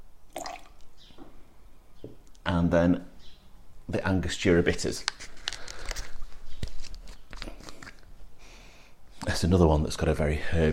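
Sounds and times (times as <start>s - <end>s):
green chartreuse pouring into a small measure: 0.3s - 0.8s
liquid dripping: 0.3s - 0.9s
speech: 2.5s - 3.1s, 3.9s - 5.3s, 9.4s - 10.7s.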